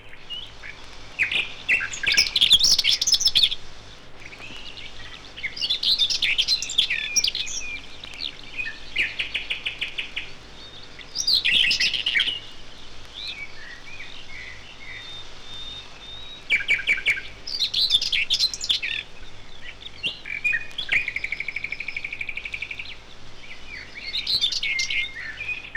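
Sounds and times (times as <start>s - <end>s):
faint steady hum: 0.0s - 25.7s
common whitethroat singing: 0.1s - 25.7s.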